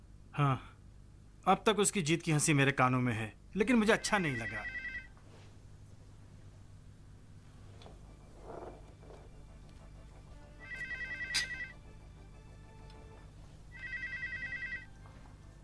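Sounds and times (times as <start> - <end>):
low steady room hum: 0.0 - 15.6
speech: 0.4 - 0.7, 1.4 - 4.8
telephone ringing with warbling electronic trill: 3.8 - 5.2, 9.2 - 15.4.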